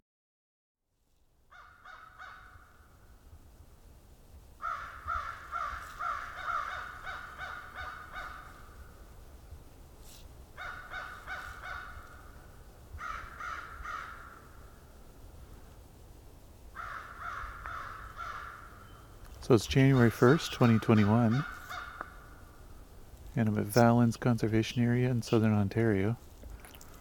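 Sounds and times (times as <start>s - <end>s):
American crows cawing at Valens Conservation Area in southern Ontario: 1.5s - 3.0s, 4.6s - 9.0s, 10.6s - 14.8s, 16.8s - 19.0s, 19.8s - 22.6s
speech: 19.5s - 21.6s, 23.4s - 26.2s.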